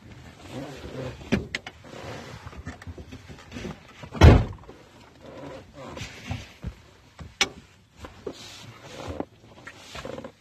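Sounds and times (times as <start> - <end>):
clunks and rattles of a pickup truck window being worked back into place: 0.0 - 10.3
heavy thump: 4.1 - 4.6.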